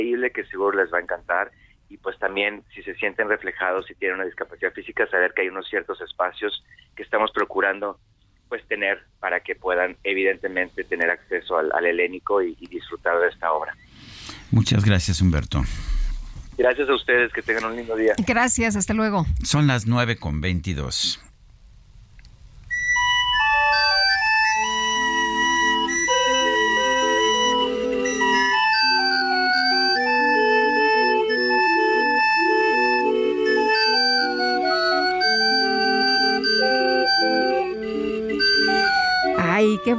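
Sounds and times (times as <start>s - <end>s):
speech: 0.0s - 13.9s, 14.5s - 16.0s, 16.6s - 21.3s
barrel organ playing a bright steady melody over a low drone: 22.6s - 39.9s.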